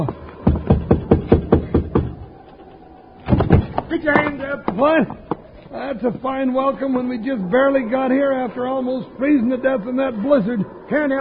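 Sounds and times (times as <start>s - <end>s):
firm knocking on a wooden door: 0.5s - 2.2s
speech: 4.0s - 11.1s.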